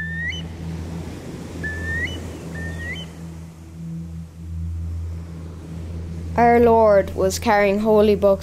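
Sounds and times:
curlew giving whistled calls: 0.0s - 5.6s
low engine drone: 0.0s - 8.4s
speech: 6.4s - 8.4s.

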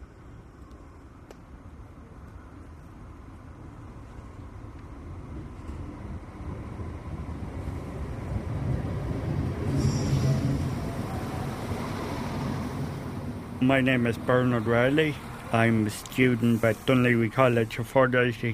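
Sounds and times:
train arriving at a station with low mechanical roar: 1.6s - 18.5s
brief high-pitched train squeal: 9.5s - 17.7s
speech: 13.6s - 18.5s.

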